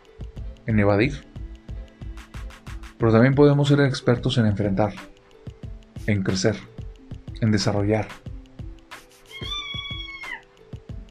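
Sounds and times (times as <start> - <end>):
low thumping beat: 0.0 - 11.0
speech: 0.7 - 1.3, 3.0 - 5.1, 6.1 - 6.7, 7.4 - 8.2
kitten meowing: 9.3 - 10.5.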